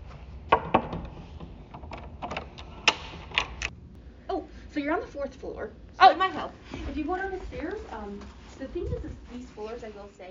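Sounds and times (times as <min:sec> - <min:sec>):
wooden door opening in a government information library: 0:00.5 - 0:03.7
latch clicks: 0:00.7 - 0:03.8
speech: 0:04.8 - 0:10.3.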